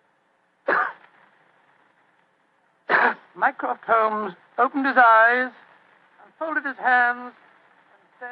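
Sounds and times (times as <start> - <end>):
faint room hum: 0.0 - 8.3
short cough: 2.9 - 3.2
speech: 3.4 - 5.6, 6.4 - 7.4.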